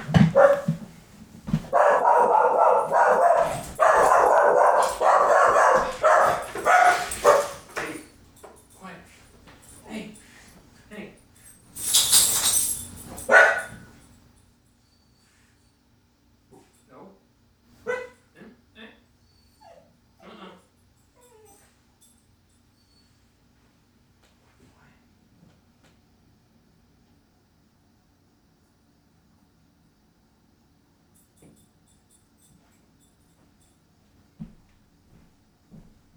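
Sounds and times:
dog barking at mail delivery: 0.2 - 0.8, 1.7 - 7.8, 13.3 - 13.9, 17.9 - 18.2.

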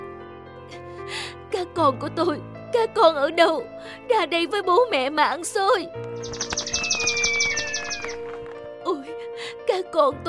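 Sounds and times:
speech: 1.8 - 6.5, 9.7 - 10.2
sustained whistle-like bird call: 6.2 - 8.2
bird chirps: 6.2 - 8.4.

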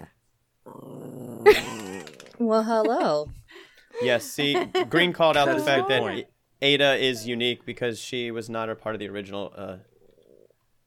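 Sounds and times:
puppy growling: 0.6 - 2.4
speech: 1.4 - 1.7, 2.4 - 3.4, 4.0 - 9.9
laughter: 1.5 - 3.3, 4.0 - 6.2.

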